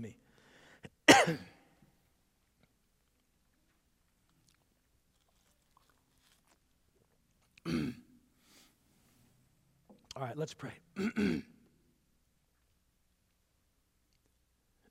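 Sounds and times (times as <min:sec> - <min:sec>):
softer cough or throat clearing: 0:00.9 - 0:01.7, 0:07.6 - 0:08.2, 0:11.0 - 0:11.7
harsh cough into a microphone with ringing reverberation: 0:01.0 - 0:01.6, 0:07.6 - 0:08.1, 0:11.0 - 0:11.6
speech: 0:01.2 - 0:01.5, 0:10.2 - 0:11.5.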